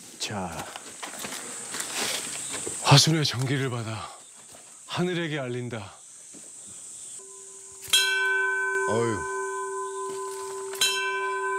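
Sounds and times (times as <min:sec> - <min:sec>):
speech: 0:00.3 - 0:00.8, 0:02.9 - 0:04.2, 0:05.0 - 0:06.0, 0:08.9 - 0:09.3
large bell on Mudeungsan mountain being struck: 0:07.2 - 0:11.5.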